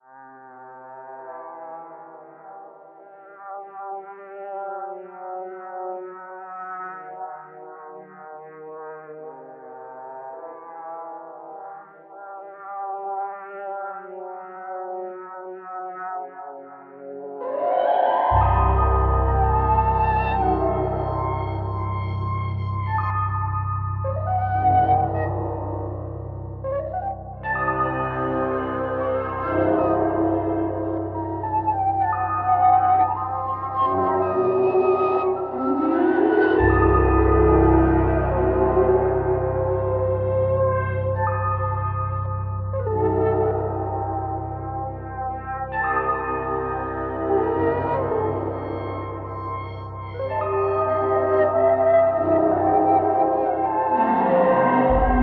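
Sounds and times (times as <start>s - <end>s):
cassette piano: 17.2s - 55.2s.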